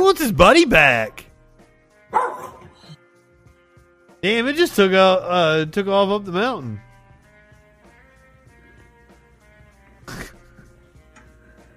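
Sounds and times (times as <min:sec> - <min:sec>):
speech: 0:00.1 - 0:01.2, 0:04.2 - 0:06.8
dog barking: 0:02.1 - 0:03.0.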